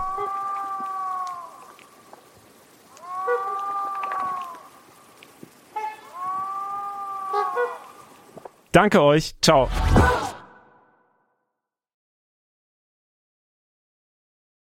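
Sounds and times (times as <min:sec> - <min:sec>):
moose calling with long moaning cries: 0:02.9 - 0:05.0, 0:05.7 - 0:08.2
speech: 0:08.7 - 0:10.3.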